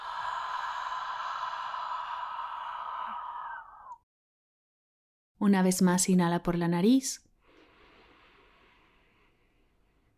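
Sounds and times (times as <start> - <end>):
deep exhale through the mouth as if fogging a pane of glass: 0.0 - 3.9, 7.4 - 9.7
speech: 5.4 - 7.3.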